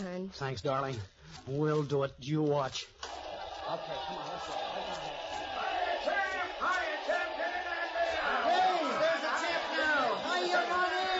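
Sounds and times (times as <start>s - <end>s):
speech: 0.0s - 3.0s, 3.7s - 6.9s
large crowd cheering and yelling wildly: 3.0s - 11.1s.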